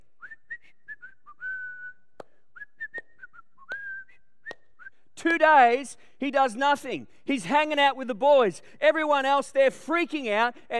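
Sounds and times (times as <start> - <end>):
person whistling a simple tune: 0.0 - 5.1
speech: 5.2 - 10.7.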